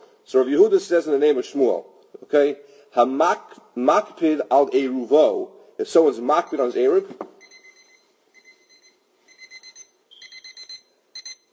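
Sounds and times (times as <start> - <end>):
speech: 0.3 - 7.3
phone alarm beeping: 7.4 - 11.5.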